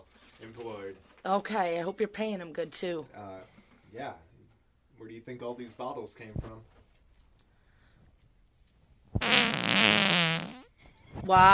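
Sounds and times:
speech: 0:00.4 - 0:04.3, 0:05.0 - 0:06.8, 0:11.3 - 0:11.5
loud sustained buzzy fart: 0:09.2 - 0:10.8.

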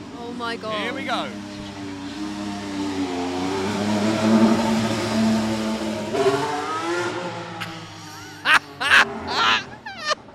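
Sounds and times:
speech: 0:00.4 - 0:01.5
Formula 1 car engine accelerating out of the pit lane: 0:01.2 - 0:09.4
laughter: 0:07.6 - 0:10.2.

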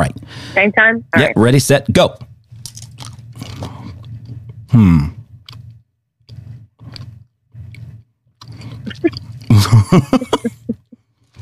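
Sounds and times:
speech: 0:00.0 - 0:02.3, 0:04.7 - 0:05.2, 0:08.9 - 0:10.5
steady low hum: 0:00.0 - 0:11.4
two people chewing chewy toffee-like candies: 0:02.6 - 0:09.9, 0:10.8 - 0:11.4
laughter: 0:09.5 - 0:10.9.

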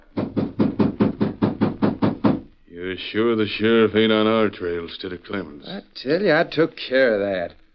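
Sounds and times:
knocking on a door: 0:00.0 - 0:02.5
speech: 0:02.8 - 0:07.6.

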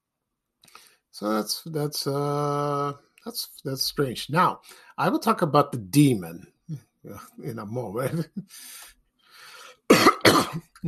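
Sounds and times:
speech: 0:01.2 - 0:09.0, 0:09.9 - 0:10.8
person coughing: 0:09.9 - 0:10.8.

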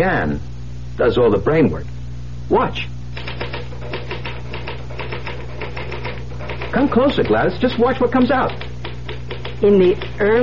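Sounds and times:
speech: 0:00.0 - 0:03.0, 0:06.7 - 0:08.6, 0:09.6 - 0:10.4
mechanical typewriter typing: 0:03.1 - 0:10.4.

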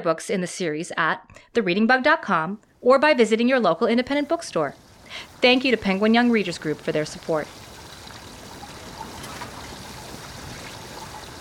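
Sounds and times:
speech: 0:00.0 - 0:07.6
water sloshing inside a flooding boat: 0:04.1 - 0:11.3.

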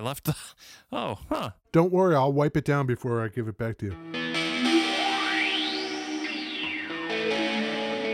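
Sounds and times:
speech: 0:00.0 - 0:04.2
guitar played through reverb and modulation effects pedal: 0:04.0 - 0:08.1.

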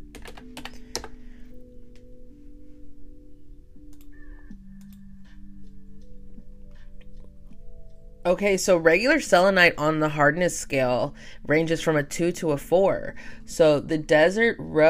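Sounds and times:
steady low hum: 0:00.0 - 0:14.8
computer keyboard clicking: 0:00.1 - 0:01.2
speech: 0:08.3 - 0:14.8.

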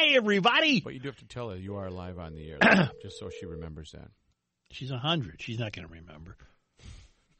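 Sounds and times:
speech: 0:00.2 - 0:06.9
telephone touch-tone dialing beeps: 0:02.6 - 0:03.7.

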